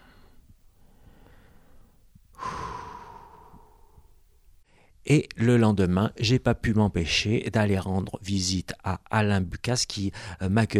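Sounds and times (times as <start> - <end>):
breathing: 0.0 - 5.0, 10.1 - 10.4
speech: 5.1 - 10.7.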